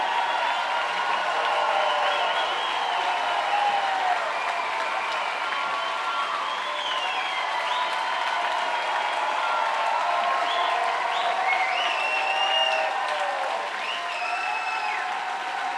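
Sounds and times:
cheers: 0.0 - 15.7
dense applause from a large crowd: 0.0 - 15.7
whistles: 1.7 - 3.7, 4.3 - 8.3, 10.4 - 13.0, 13.8 - 15.1.

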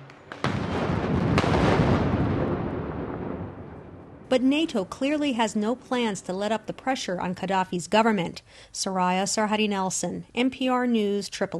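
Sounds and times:
fireworks popping and booming in the streets of Tripoli Libya: 0.0 - 4.8
celebratory gunfire in the streets of Tripoli Libya: 0.2 - 3.9
speech: 4.3 - 11.5.

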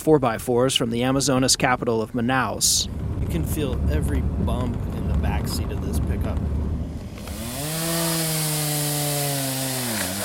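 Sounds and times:
speech: 0.0 - 6.6
chainsaw cutting storm-toppled trees in the Amazon jungle near Manaus, Brazil: 7.1 - 10.2.

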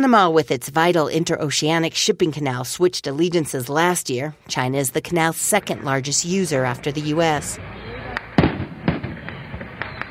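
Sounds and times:
speech: 0.0 - 7.9
fireworks exploding at a container port opening ceremony in Panama: 8.0 - 10.0.

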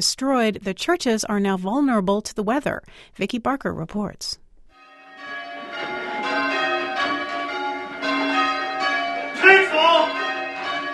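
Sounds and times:
speech: 0.0 - 4.4
hand-rung church bells change ringing: 4.8 - 10.9.

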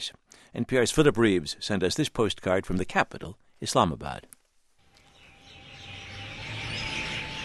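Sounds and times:
speech: 0.0 - 4.3
many spring birds chirping and trilling in Islamabad: 4.8 - 7.4.

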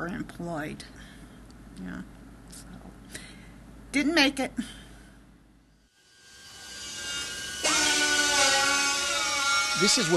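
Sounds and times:
speech: 0.0 - 1.1, 1.8 - 3.2, 3.9 - 4.8, 9.8 - 10.1
high-pitched power tool whining in a trim and drill shop: 5.9 - 10.1
second drill spinning up: 6.0 - 10.1.

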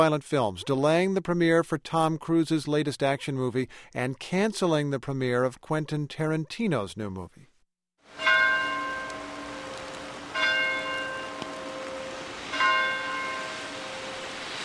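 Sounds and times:
speech: 0.0 - 7.5
single church bell tolling in remembrance in Newtown, Connecticut: 8.1 - 14.6.

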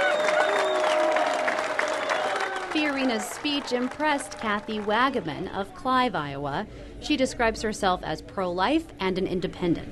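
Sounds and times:
crowd booing at a campaign speech: 0.0 - 3.2
crowd applause at a campaign speech: 0.0 - 5.5
speech: 2.8 - 9.9.

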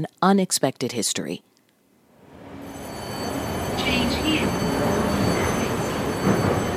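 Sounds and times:
speech: 0.0 - 1.5
subway train in motion rumbling and rattling: 2.2 - 6.7.

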